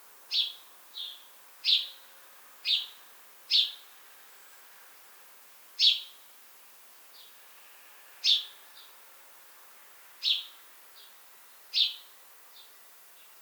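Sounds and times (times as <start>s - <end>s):
house sparrow chirps: 0.3s - 2.0s, 2.7s - 3.8s, 5.8s - 6.1s, 8.2s - 8.5s, 10.2s - 11.1s, 11.8s - 12.7s.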